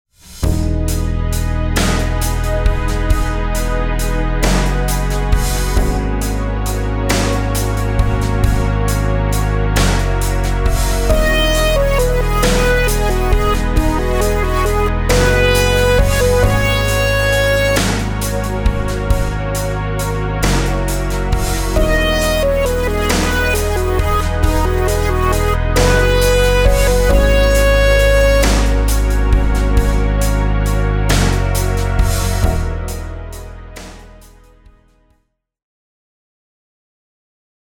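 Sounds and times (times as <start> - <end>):
compound rhythmic pattern: 0.8 - 34.4.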